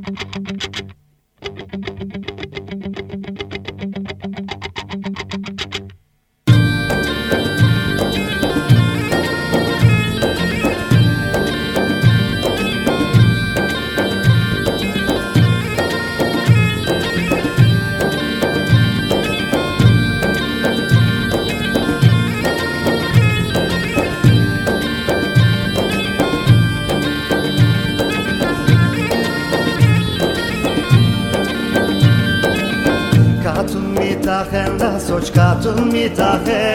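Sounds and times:
speech: 0.0s - 0.9s, 35.2s - 36.7s
recorded full band song played on radio: 6.5s - 36.7s.

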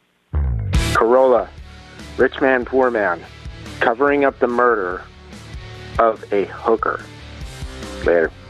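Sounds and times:
telephone voicemail buzzy electronic tone: 0.4s - 1.0s
speech: 1.3s - 1.6s, 2.2s - 5.1s, 6.0s - 7.1s, 8.0s - 8.4s.

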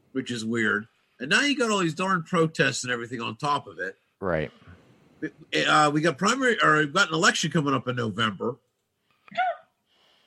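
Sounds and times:
speech: 0.2s - 4.6s, 5.2s - 8.6s
hiccup: 9.3s - 9.8s.

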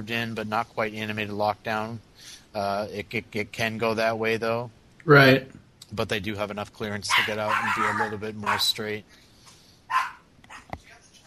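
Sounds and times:
speech: 0.0s - 9.2s
dog barking: 7.1s - 8.7s, 9.9s - 10.7s.

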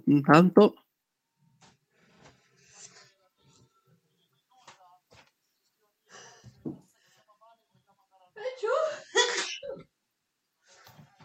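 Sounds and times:
speech: 0.1s - 0.8s
sneeze: 9.2s - 9.8s.

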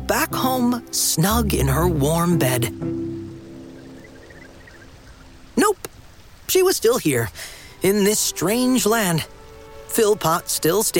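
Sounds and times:
river water rushing and trickling: 0.0s - 10.9s
speech: 0.1s - 3.1s, 6.5s - 10.9s.

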